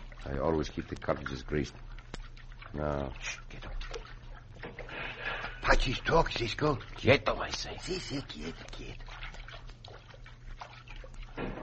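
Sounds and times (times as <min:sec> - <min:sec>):
low steady hum: 0:00.0 - 0:11.6
person wading slowly through a river and splashing: 0:00.0 - 0:11.6
speech: 0:00.2 - 0:02.0, 0:02.7 - 0:04.0, 0:05.7 - 0:09.2.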